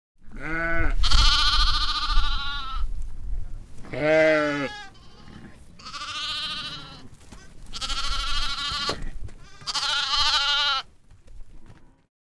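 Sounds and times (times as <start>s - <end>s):
lambs and sheep in a stable field: 0.2s - 2.9s, 3.8s - 10.9s.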